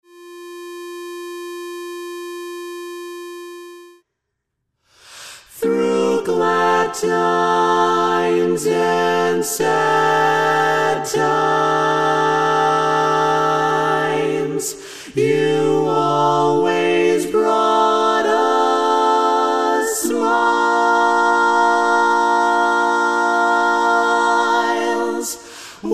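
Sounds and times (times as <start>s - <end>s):
tenor part of an SATB choir singing: 5.5s - 25.9s.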